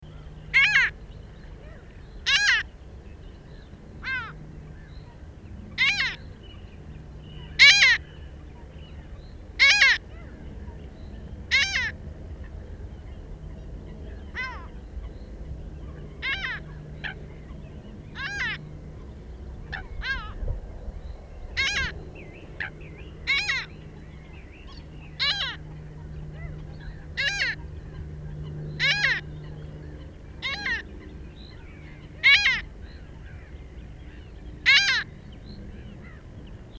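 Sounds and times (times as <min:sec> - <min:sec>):
Mediterranean gull: 0:00.1 - 0:01.0, 0:01.6 - 0:02.7, 0:04.0 - 0:04.4, 0:05.8 - 0:06.2, 0:07.4 - 0:08.1, 0:09.6 - 0:10.4, 0:11.5 - 0:12.0, 0:14.3 - 0:14.8, 0:16.2 - 0:17.3, 0:18.2 - 0:18.6, 0:19.7 - 0:20.4, 0:21.6 - 0:22.0, 0:22.6 - 0:23.7, 0:24.7 - 0:29.3, 0:30.4 - 0:31.1, 0:31.8 - 0:33.5, 0:34.1 - 0:35.1.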